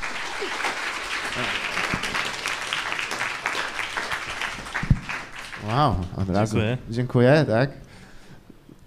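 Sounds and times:
audience applauding to welcome a guest: 0.0 - 6.4
speech: 0.4 - 1.6, 5.7 - 7.8.

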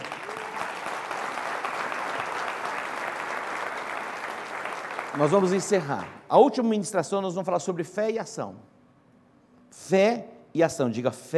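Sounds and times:
large audience applauding: 0.0 - 6.2
speech: 5.2 - 8.7, 9.8 - 11.3.

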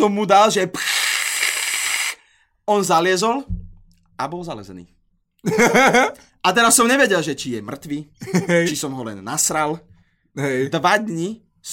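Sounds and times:
speech: 0.0 - 0.9, 2.7 - 3.6, 4.2 - 11.7
voice imitating cockroach spray being sprayed at a spider: 0.7 - 2.3
laughter: 5.4 - 6.2, 8.2 - 8.8.

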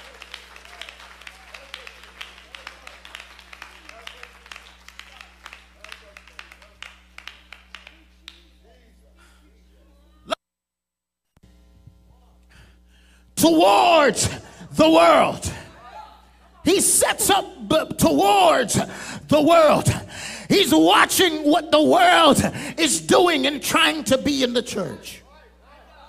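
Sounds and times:
audience clapping in worship: 0.0 - 8.8
speech: 13.4 - 15.6, 16.7 - 25.2.

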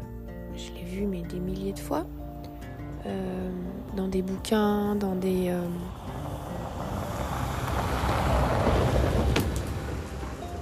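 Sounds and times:
speech: 0.6 - 2.2, 3.0 - 6.2
car passing by outside: 2.6 - 10.5.

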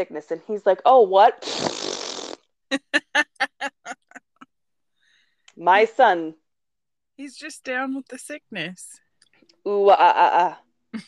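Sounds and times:
speech: 0.0 - 1.9, 2.7 - 3.3, 5.6 - 6.4, 7.2 - 9.0, 9.6 - 11.0
sloppy fart noise made with the mouth: 1.4 - 2.6.

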